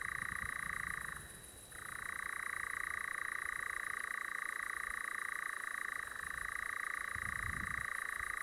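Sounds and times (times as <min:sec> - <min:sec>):
European nightjar song, continuous dry purring trill: 0:00.0 - 0:08.4.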